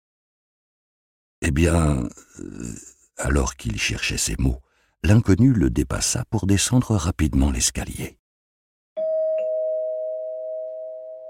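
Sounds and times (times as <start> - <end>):
speech: 1.4 - 8.2
small bell ringing as someone enters a café: 9.0 - 11.2.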